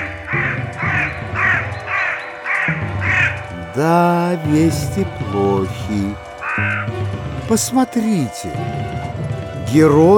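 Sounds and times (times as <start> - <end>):
raven cawing: 0.0 - 7.6
speech: 3.8 - 9.0, 9.7 - 10.1.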